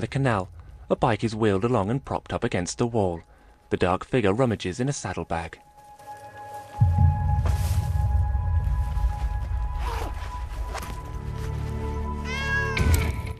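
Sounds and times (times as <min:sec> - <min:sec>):
steady low rumble: 0:00.0 - 0:02.9, 0:06.8 - 0:11.1
speech: 0:00.0 - 0:05.7
ginger cat on a purple lead meowing at night beside a canal: 0:12.2 - 0:13.1.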